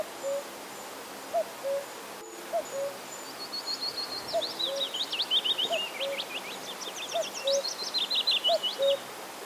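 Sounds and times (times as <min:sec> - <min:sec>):
cuckoo calling at a pond: 0:00.0 - 0:00.5, 0:01.3 - 0:01.9, 0:02.5 - 0:03.0, 0:04.3 - 0:06.4, 0:07.1 - 0:09.0
willow warbler singing at a pond: 0:02.6 - 0:09.0.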